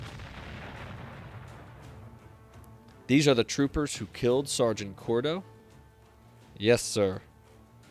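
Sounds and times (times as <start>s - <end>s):
big gun exploding in heavy artillery blasts: 0.0s - 2.3s
speech: 3.1s - 5.5s, 6.6s - 7.3s.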